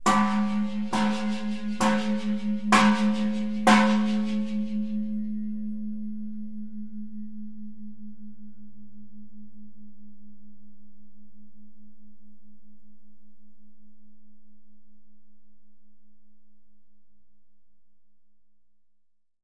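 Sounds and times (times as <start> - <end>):
Khmer temple bell ringing in a bell tower: 0.0 - 9.0.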